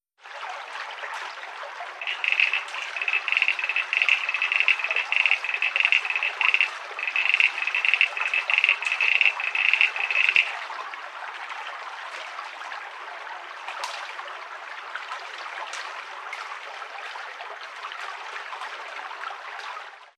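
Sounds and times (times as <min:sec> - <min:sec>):
frogs croaking: 0:02.0 - 0:10.7.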